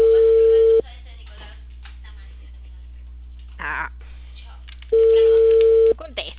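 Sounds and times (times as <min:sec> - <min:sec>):
telephone line tone of an unanswered call: 0:00.0 - 0:00.8, 0:04.9 - 0:06.0
faint low hum: 0:00.0 - 0:06.3.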